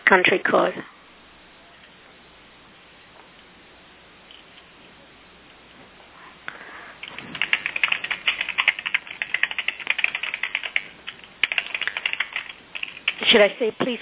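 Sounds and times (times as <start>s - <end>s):
speech: 0.1s - 0.9s, 13.4s - 13.9s
fingers typing on a computer keyboard: 7.0s - 13.3s.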